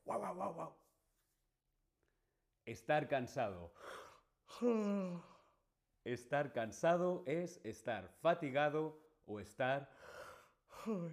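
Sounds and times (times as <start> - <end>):
dog barking: 0.0 - 0.8
speech: 0.2 - 0.9, 2.7 - 5.3, 6.0 - 11.1.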